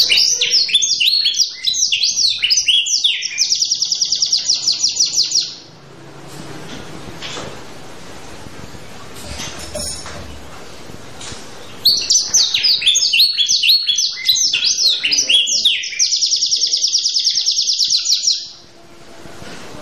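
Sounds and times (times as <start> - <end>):
canary in vigorous song with long rolls: 0.0 - 6.0, 11.2 - 18.9
faint background noise: 0.0 - 19.7.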